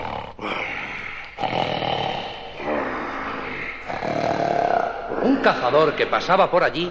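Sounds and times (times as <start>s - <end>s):
wolf snoring loudly: 0.0s - 5.6s
speech: 5.4s - 6.8s.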